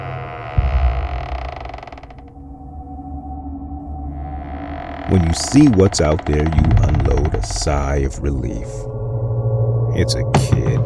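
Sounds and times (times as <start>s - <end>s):
door creaking slowly open: 0.0s - 2.7s, 4.0s - 8.8s
soft thud: 0.6s - 2.5s
speech: 5.1s - 8.9s, 10.0s - 10.8s.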